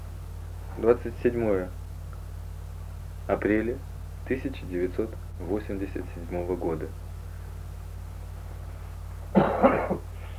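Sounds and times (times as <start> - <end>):
low hum: 0.0 - 10.3
speech: 0.8 - 1.8, 3.3 - 7.0
person coughing: 9.3 - 10.2.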